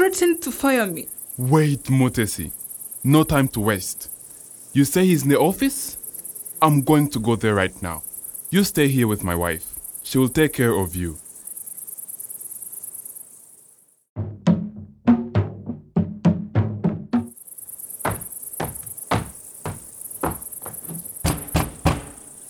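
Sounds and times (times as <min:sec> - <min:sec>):
steady high insect-like chirring: 0:00.0 - 0:14.1, 0:17.2 - 0:22.4
speech: 0:00.1 - 0:04.1, 0:04.7 - 0:06.0, 0:06.6 - 0:11.2
heavy banging on an office door: 0:14.2 - 0:17.3, 0:18.0 - 0:22.4.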